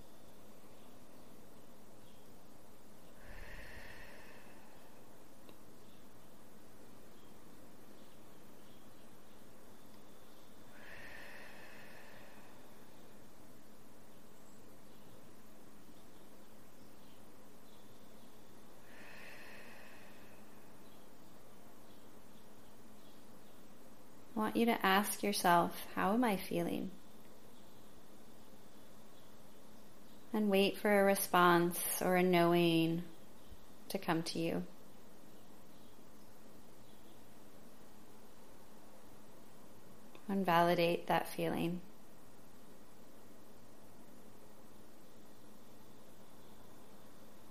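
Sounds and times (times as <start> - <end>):
faint hiss: 0.0 - 47.4
slow breathing in through the nose and out through the mouth: 3.0 - 5.3, 10.6 - 13.4, 18.6 - 21.4
speech: 24.4 - 27.0, 30.4 - 33.1, 33.9 - 34.7, 40.3 - 41.9.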